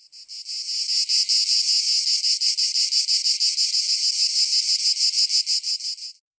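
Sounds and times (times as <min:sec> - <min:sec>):
cicadas buzzing in the evening: 0:00.0 - 0:06.2.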